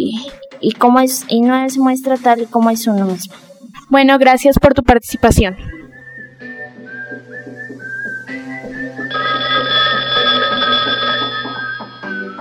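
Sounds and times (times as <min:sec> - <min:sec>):
speech: 0:00.0 - 0:05.8
melodic telephone ringtone announcing a live call-in: 0:09.1 - 0:12.2.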